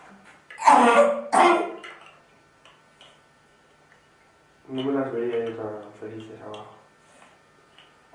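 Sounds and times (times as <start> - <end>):
harsh rough coughs: 0.6 - 1.8
speech: 4.8 - 6.8.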